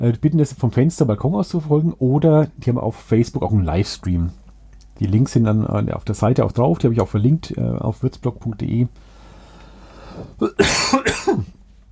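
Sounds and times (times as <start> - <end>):
speech: 0.0 - 4.4, 5.0 - 9.0, 10.2 - 11.6
harsh rasping coughs: 10.4 - 11.6.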